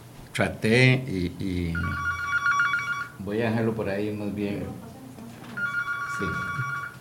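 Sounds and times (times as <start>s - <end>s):
speech: 0.4s - 2.1s, 3.2s - 4.9s, 6.2s - 6.7s
mobile phone ringing: 1.7s - 3.2s, 5.5s - 6.9s.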